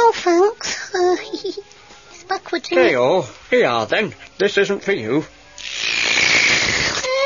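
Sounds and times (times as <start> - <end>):
speech: 0.2 - 0.6, 1.4 - 1.8, 2.6 - 5.4
fizzy pop bottle opening hiss: 5.6 - 7.1.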